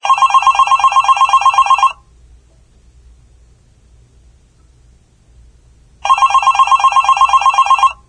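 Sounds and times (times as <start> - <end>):
business phone sound: 0.0 - 2.0, 6.0 - 8.0.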